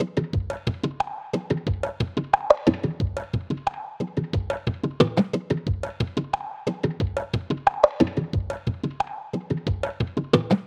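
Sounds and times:
percussion loop: 0.0 - 10.6.

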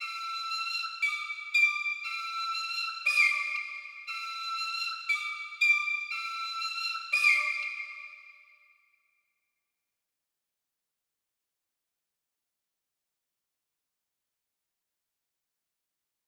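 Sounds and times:
flute melody loop in D minor: 0.0 - 8.4.

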